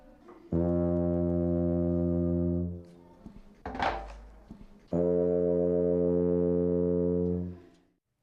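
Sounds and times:
tuba holding a long low note, open and with a cone-shaped wooden mute: 0:00.5 - 0:02.9, 0:04.9 - 0:07.7.

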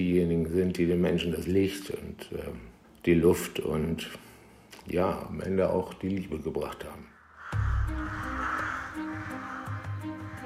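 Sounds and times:
speech: 0:00.0 - 0:07.1
crow cawing: 0:07.2 - 0:10.4.

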